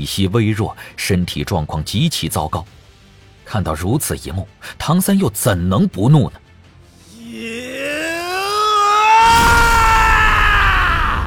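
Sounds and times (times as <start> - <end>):
speech: 0.0 - 2.8, 3.5 - 6.4
deep angry roar from a man: 7.1 - 11.2.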